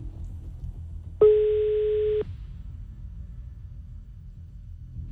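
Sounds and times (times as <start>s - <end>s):
telephone ringing tone on an unanswered outgoing call: 1.2s - 2.2s.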